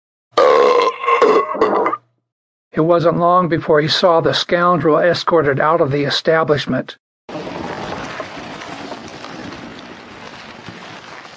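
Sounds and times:
loud drawn-out burp: 0.3s - 2.1s
speech: 2.8s - 7.0s.

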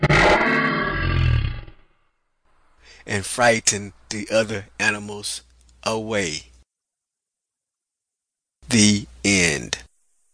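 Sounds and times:
lion roaring: 0.0s - 1.9s
speech: 3.1s - 6.5s, 8.7s - 9.9s.

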